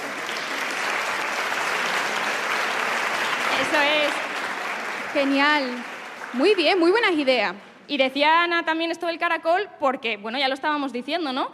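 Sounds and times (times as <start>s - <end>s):
audience applause: 0.0s - 7.2s
speech: 3.7s - 4.3s, 5.2s - 11.5s.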